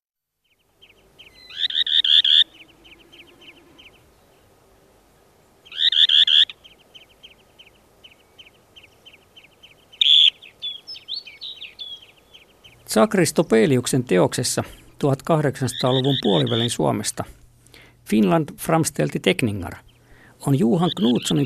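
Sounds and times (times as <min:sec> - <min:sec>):
dunlin giving harsh buzzy bursts and trill: 0:00.7 - 0:04.4, 0:05.6 - 0:12.9, 0:14.6 - 0:17.0, 0:19.7 - 0:21.4
speech: 0:12.9 - 0:17.4, 0:18.1 - 0:21.4.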